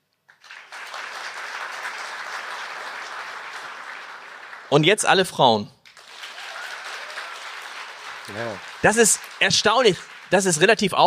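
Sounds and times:
audience clapping: 0:00.3 - 0:11.0
speech: 0:04.7 - 0:05.8, 0:08.3 - 0:11.0.

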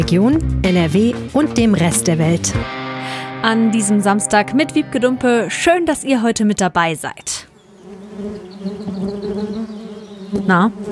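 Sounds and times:
speech: 0:00.0 - 0:07.5, 0:08.2 - 0:08.9, 0:10.3 - 0:10.9
bees buzzing: 0:02.8 - 0:10.9.

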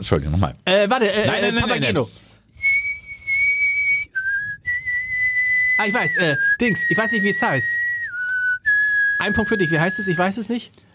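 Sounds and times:
speech: 0:00.0 - 0:02.3, 0:05.8 - 0:07.8, 0:09.2 - 0:10.8
person whistling a song melody: 0:02.6 - 0:10.2.

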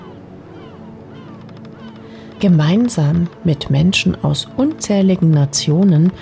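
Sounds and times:
seagulls screeching above a large excursion ship on the Mediterranean near Istanbul: 0:00.0 - 0:02.8
speech: 0:02.4 - 0:06.2.

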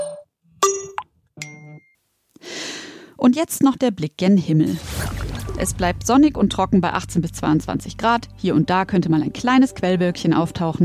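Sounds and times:
message notification chime dings: 0:00.0 - 0:02.0
speech: 0:03.2 - 0:05.0, 0:05.6 - 0:10.8.

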